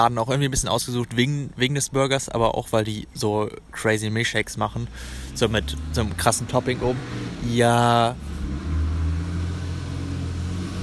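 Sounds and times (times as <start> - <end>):
speech: 0.0 - 8.6
heavy car passing on a street: 5.1 - 10.8.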